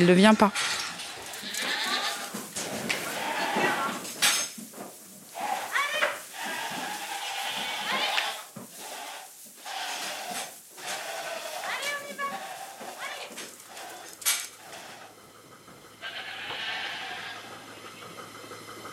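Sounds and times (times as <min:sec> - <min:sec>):
speech: 0:00.0 - 0:00.8
goats bleating during milking: 0:00.0 - 0:04.2, 0:05.3 - 0:15.1, 0:16.0 - 0:17.6
metallic clinks and clatter of milking pails and equipment: 0:00.6 - 0:02.1.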